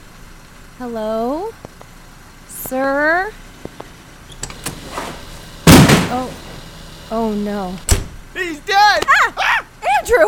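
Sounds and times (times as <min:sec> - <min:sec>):
speech: 0:00.8 - 0:01.8, 0:02.7 - 0:03.4, 0:06.1 - 0:06.4, 0:07.1 - 0:10.2
faint mechanical clicks: 0:03.6 - 0:05.2
heavy protective door slamming shut: 0:04.3 - 0:06.7, 0:07.8 - 0:08.3.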